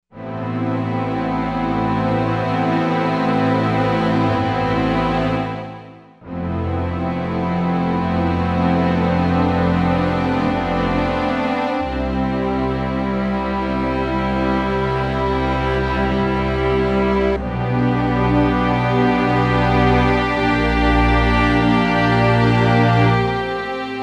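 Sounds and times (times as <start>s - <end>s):
warm bowed strings: 0.2s - 24.0s.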